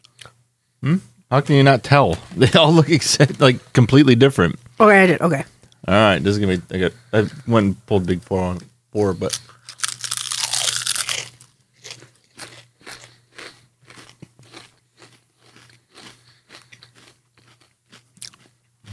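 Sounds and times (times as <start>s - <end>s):
laughter: 0.8s - 9.3s
speech: 0.8s - 9.5s
Szechuan chicken flavor potato chips crunched and chewed: 9.2s - 18.9s.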